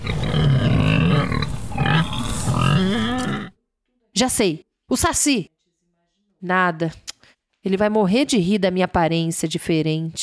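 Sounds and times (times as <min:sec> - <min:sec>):
pig grunting and snorting: 0:00.0 - 0:03.6
speech: 0:04.2 - 0:05.6, 0:06.4 - 0:07.0, 0:07.6 - 0:10.2.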